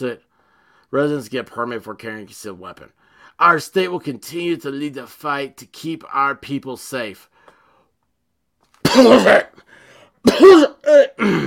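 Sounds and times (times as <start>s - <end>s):
speech: 0.0s - 0.3s, 0.9s - 7.3s, 8.9s - 11.4s
person clearing throat: 8.8s - 9.6s, 10.2s - 11.4s
person coughing in loud rough bursts: 8.8s - 9.6s, 10.2s - 11.4s.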